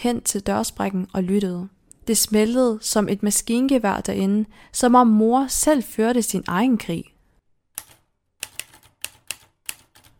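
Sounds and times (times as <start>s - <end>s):
speech: 0.0s - 7.1s
typewriter keys clacking: 7.8s - 10.1s.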